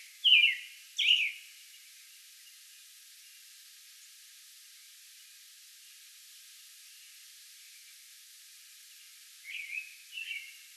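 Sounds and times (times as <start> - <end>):
faint hiss: 0.0 - 10.7
American robin singing slurred whistled caroling phrases: 0.2 - 1.4, 9.5 - 10.6.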